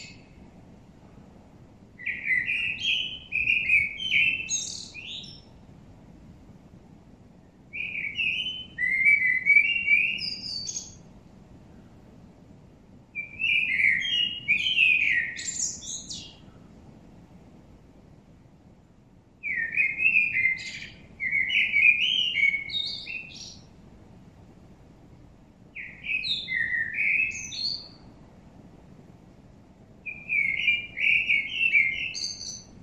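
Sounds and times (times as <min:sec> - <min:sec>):
common blackbird Turdus merula song: 0:00.0 - 0:00.5, 0:02.0 - 0:05.6, 0:07.4 - 0:11.1, 0:13.2 - 0:16.8, 0:19.4 - 0:23.8, 0:25.7 - 0:28.2, 0:30.0 - 0:32.8.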